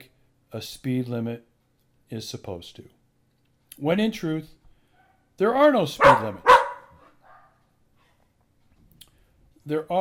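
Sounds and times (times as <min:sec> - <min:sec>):
speech: 0:00.5 - 0:01.5, 0:02.1 - 0:03.0, 0:03.8 - 0:04.6, 0:05.4 - 0:06.5, 0:09.6 - 0:09.9
dog barking: 0:06.0 - 0:07.6.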